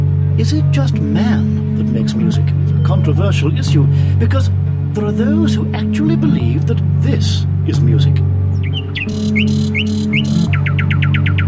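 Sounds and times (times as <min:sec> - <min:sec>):
steady low drone: 0:00.0 - 0:11.4
speech: 0:00.4 - 0:08.3, 0:09.0 - 0:11.4
bird calls with squawks and chirrups: 0:08.5 - 0:11.4.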